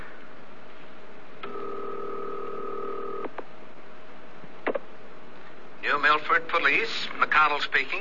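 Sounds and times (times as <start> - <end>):
steady two-tone telephone signal: 1.4 - 3.2
speech: 5.9 - 7.9.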